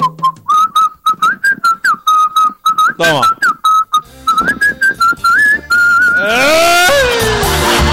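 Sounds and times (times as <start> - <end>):
person whistling a melody: 0.0 - 7.2
speech: 3.0 - 3.4.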